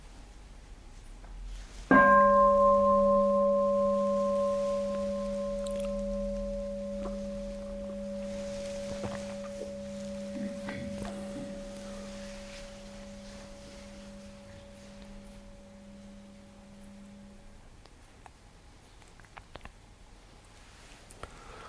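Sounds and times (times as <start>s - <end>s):
single bell struck and ringing out: 1.9s - 17.4s.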